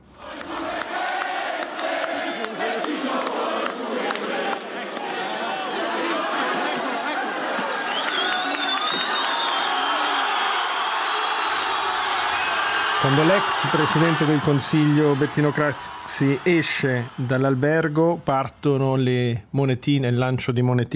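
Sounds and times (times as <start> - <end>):
large indignant crowd shouting and jeering in front of Hotel Raphael: 0.0 - 17.6
laughter: 0.2 - 17.5
speech: 13.1 - 20.9.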